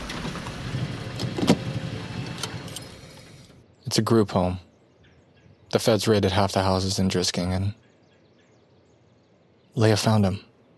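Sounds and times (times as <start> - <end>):
car idling and rolling to a stop: 0.0 - 3.6
light jangle: 2.6 - 3.6
speech: 3.9 - 4.7, 5.7 - 7.8, 9.8 - 10.5.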